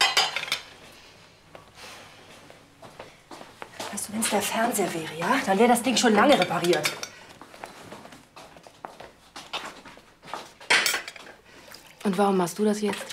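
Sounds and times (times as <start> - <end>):
dishes and cutlery clinking in a kitchen sink while washed by hand: 0.0 - 0.8, 5.2 - 7.2, 10.5 - 11.4
speech: 4.1 - 7.0, 12.1 - 13.1.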